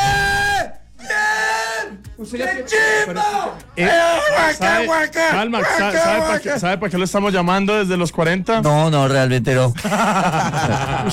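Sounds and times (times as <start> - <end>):
man yelling excitedly: 0.0 - 6.8
speech: 2.2 - 11.1
laughter: 9.8 - 11.1.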